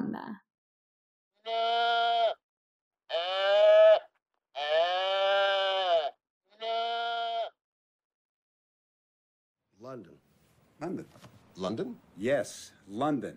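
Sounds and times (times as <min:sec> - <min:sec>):
sheep bleating while being herded over a bridge: 0:01.4 - 0:02.4, 0:03.1 - 0:07.6
speech: 0:01.5 - 0:01.8, 0:10.8 - 0:13.3.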